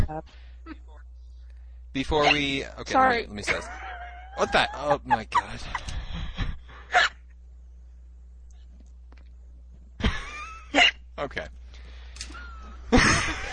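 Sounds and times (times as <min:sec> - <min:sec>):
speech: 0:00.1 - 0:01.1, 0:02.0 - 0:06.0, 0:06.9 - 0:07.2, 0:10.7 - 0:11.6
hiccups: 0:02.2 - 0:02.5, 0:06.9 - 0:07.2, 0:10.7 - 0:11.0
laughter: 0:03.4 - 0:06.5, 0:12.3 - 0:13.5.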